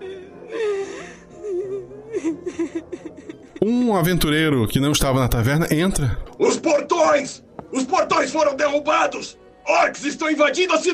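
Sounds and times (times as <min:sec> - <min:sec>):
woman crying and whimpering with sobbing hiccups: 0:00.0 - 0:03.6
speech: 0:03.6 - 0:10.9.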